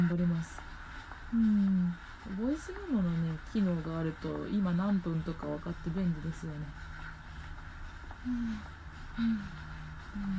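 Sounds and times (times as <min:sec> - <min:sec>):
speech: 0:00.0 - 0:00.7, 0:01.3 - 0:06.9, 0:08.2 - 0:10.3
low steady rumble: 0:00.0 - 0:10.3
heavy labored breathing of a person walking: 0:08.1 - 0:10.3.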